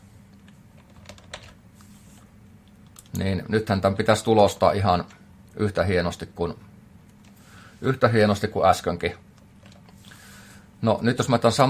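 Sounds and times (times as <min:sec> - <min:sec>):
low steady hum: 0:00.0 - 0:11.6
typing on a computer keyboard while entering code: 0:00.8 - 0:01.6
speech: 0:03.2 - 0:06.7, 0:07.8 - 0:09.2, 0:10.8 - 0:11.6.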